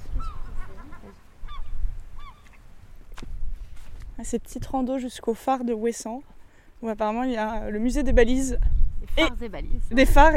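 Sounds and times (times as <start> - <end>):
seagulls calling on the island of Ouessant in France: 0.0 - 2.7
low rumble of wind on the island of Ouessant in France: 0.0 - 10.3
speech: 4.2 - 10.3.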